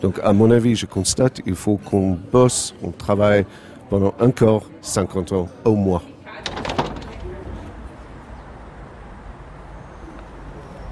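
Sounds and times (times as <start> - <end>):
speech: 0.0 - 6.1
murmur: 0.0 - 10.8
pharmacy door opening: 6.3 - 7.8.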